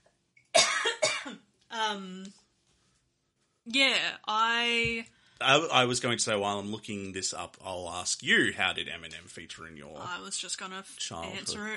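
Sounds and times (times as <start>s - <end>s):
coughing: 0.5s - 1.4s, 11.2s - 11.7s
speech: 1.8s - 2.4s, 3.7s - 11.7s.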